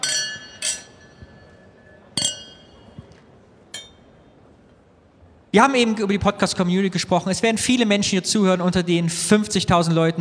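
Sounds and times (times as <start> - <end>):
champagne glasses clinking in a toast: 0.0 - 3.2
speech: 5.5 - 10.1.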